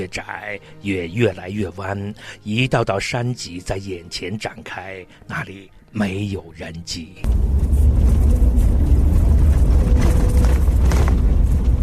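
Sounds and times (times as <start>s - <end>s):
speech: 0.0s - 8.0s
four-wheel-drive vehicle engine rumbling on a mountain road in East Gippsland: 7.2s - 11.8s
vehicle rattles and bumps on a bumpy mountain road: 7.3s - 11.8s.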